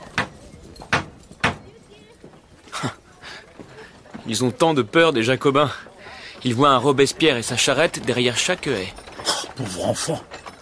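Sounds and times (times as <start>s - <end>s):
shuffling: 0.0s - 10.6s
bronze door knocker striking a door: 0.1s - 1.6s
speech: 4.3s - 9.0s, 9.6s - 10.3s.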